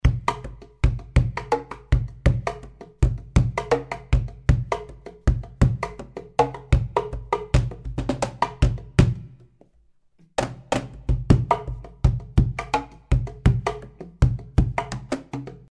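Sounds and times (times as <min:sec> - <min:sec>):
cajon: 0:00.0 - 0:09.5, 0:10.3 - 0:15.7.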